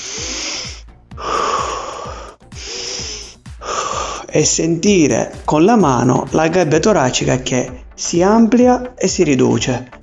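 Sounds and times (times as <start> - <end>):
deep breathing during an intercostal breathing exercise: 0.0 - 4.4
speech: 4.4 - 10.0.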